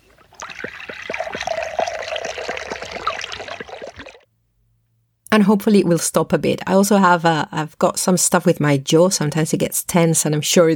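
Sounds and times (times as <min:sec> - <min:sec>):
person gulping water: 0:00.0 - 0:04.2
water trickle: 0:00.0 - 0:04.2
speech: 0:05.3 - 0:10.7.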